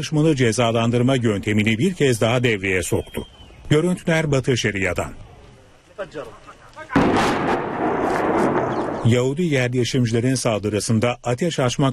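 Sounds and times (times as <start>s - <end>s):
speech: 0.0s - 5.3s, 6.0s - 6.4s, 9.0s - 11.9s
explosives blowing up a house in the West Bank: 7.0s - 9.2s.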